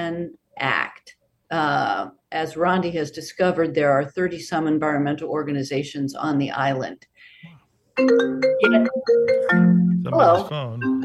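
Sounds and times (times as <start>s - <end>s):
speech: 0.1s - 11.0s
mobile phone ringtone playing a short melodic sequence: 8.0s - 11.0s.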